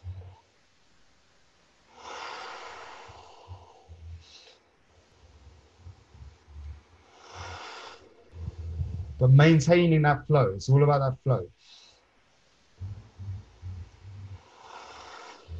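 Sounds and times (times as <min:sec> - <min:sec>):
soft low rumbles: 0:00.0 - 0:00.5, 0:03.1 - 0:07.6, 0:08.2 - 0:11.5, 0:12.6 - 0:14.6, 0:15.4 - 0:15.5
slow deep belly breathing with full inhalations: 0:01.9 - 0:09.3, 0:11.3 - 0:15.5
speech: 0:09.2 - 0:11.8.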